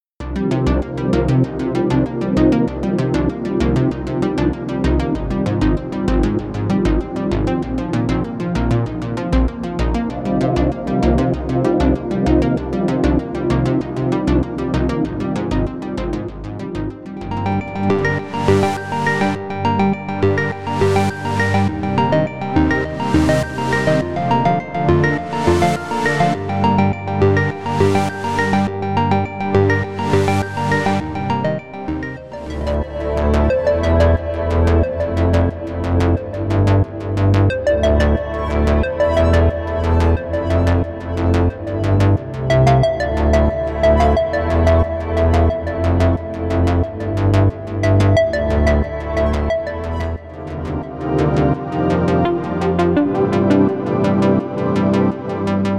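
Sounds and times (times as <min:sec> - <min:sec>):
synthwave music: 0:00.2 - 0:55.7.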